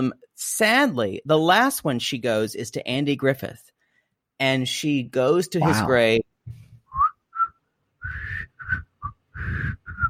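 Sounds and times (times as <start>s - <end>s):
speech: 0.0s - 3.7s, 4.4s - 6.6s
woman whistling a TV theme tune off-key: 6.9s - 10.0s.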